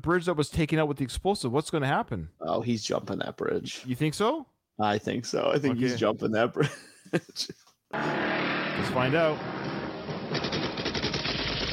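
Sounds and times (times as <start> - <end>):
speech: 0.0 - 9.6
rapid automatic gunfire from a movie action scene: 9.4 - 11.7.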